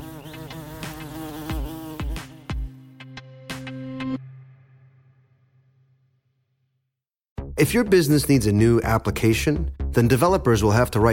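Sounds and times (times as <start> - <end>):
bees buzzing: 0.0 - 2.9
speech: 7.6 - 11.1.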